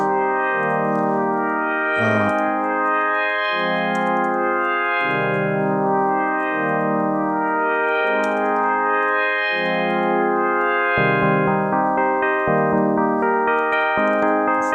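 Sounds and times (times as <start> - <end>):
sustained chords on a melodic instrument with roomy reverb: 0.0 - 14.7.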